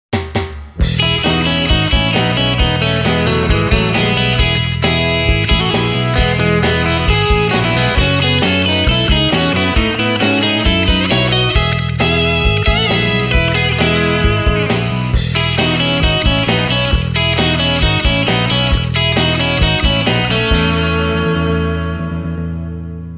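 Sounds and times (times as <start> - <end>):
Tokai TST 50 relic guitar playing: 0.8 - 23.1.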